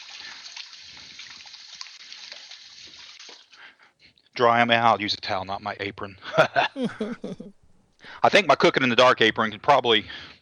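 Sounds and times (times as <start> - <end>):
running water from a kitchen tap rinsing hands during cooking: 0.0 - 3.6
speech: 4.4 - 7.6, 8.2 - 10.4
laughter: 6.2 - 7.7.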